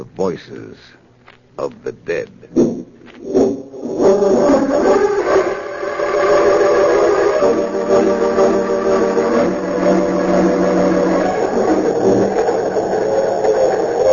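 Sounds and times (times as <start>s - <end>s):
speech: 0.0s - 1.0s, 1.6s - 5.2s, 7.4s - 8.8s
express train speeding through the night: 1.6s - 14.1s
express train whistle wailing: 4.1s - 14.1s.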